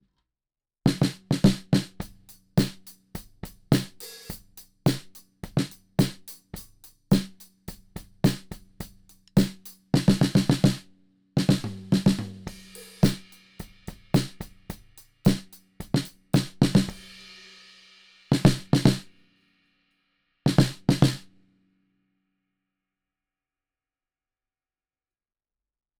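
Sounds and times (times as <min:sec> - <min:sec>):
TBone CC100 snare drum: 0:00.9 - 0:19.1, 0:20.5 - 0:21.3.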